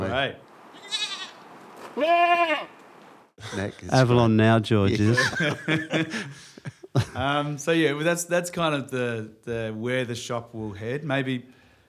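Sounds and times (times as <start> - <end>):
speech: 0.1 - 0.5, 2.0 - 2.8, 3.4 - 11.6
goat bleating: 0.8 - 1.4, 2.0 - 2.7
laughter: 3.4 - 4.2, 4.9 - 7.7.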